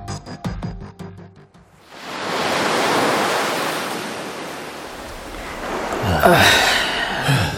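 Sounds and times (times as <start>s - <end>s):
blustery sea wind: 1.8s - 7.5s
waves washing onto a shore: 1.8s - 7.5s.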